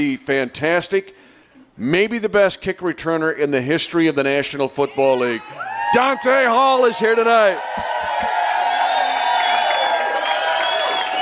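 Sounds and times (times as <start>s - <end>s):
speech: 0.0s - 1.2s, 1.8s - 8.3s
live show audience cheering and applauding a special guest: 5.5s - 11.1s.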